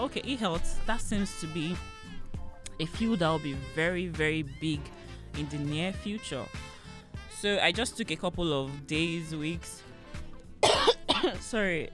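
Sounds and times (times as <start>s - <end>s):
speech: 0.0s - 2.0s, 2.8s - 6.7s, 7.3s - 9.9s, 11.2s - 11.9s
harsh coughs: 10.6s - 11.5s.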